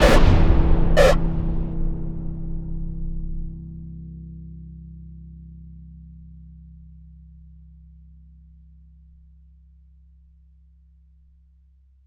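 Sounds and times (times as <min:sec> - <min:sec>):
noise bark sting: 0:00.0 - 0:00.3, 0:01.0 - 0:01.2.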